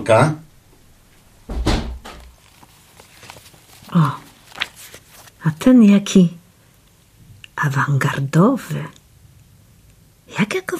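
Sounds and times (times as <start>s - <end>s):
speech: 0.0s - 0.4s, 3.9s - 4.2s, 5.4s - 6.4s, 7.6s - 9.0s, 10.3s - 10.7s
door shutting with a thud: 1.5s - 2.4s.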